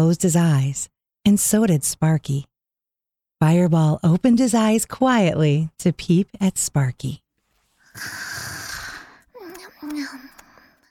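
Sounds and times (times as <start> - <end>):
speech: 0.0 - 2.5, 3.4 - 7.2, 8.0 - 8.3
person imitating snoring while napping in a chair: 7.9 - 9.2.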